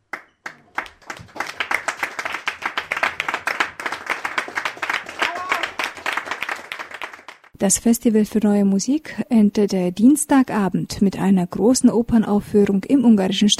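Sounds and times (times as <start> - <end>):
audience applause after a performance: 0.1 - 7.5
speech: 7.6 - 13.5.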